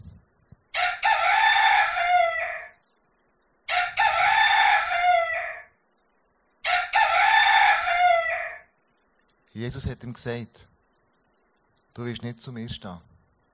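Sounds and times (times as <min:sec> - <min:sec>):
rooster crowing: 0:00.7 - 0:02.8, 0:03.7 - 0:05.8, 0:06.6 - 0:08.7
speech: 0:09.6 - 0:10.7, 0:12.0 - 0:13.1.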